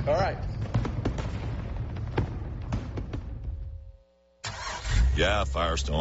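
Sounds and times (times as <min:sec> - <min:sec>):
speech: 0:00.0 - 0:00.7, 0:05.2 - 0:05.9
fireworks exploding: 0:00.0 - 0:03.9.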